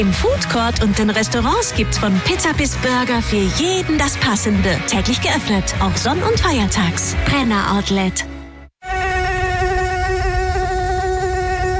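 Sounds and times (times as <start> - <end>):
speech: 0.0 - 8.4
mosquito buzzing in a high-pitched whine: 8.8 - 11.7.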